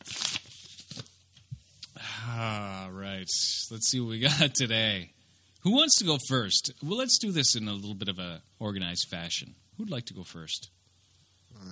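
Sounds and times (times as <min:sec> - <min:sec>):
paper envelope torn open by hand: 0:00.0 - 0:01.2
speech: 0:03.3 - 0:10.8, 0:11.5 - 0:11.7.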